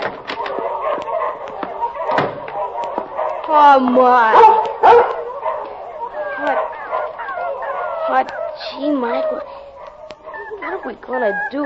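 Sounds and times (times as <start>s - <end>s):
dog barking in a cage: 0.4s - 11.6s
speech: 3.6s - 5.1s, 10.9s - 11.6s
dog whimpering and whining in a cage: 5.8s - 11.6s.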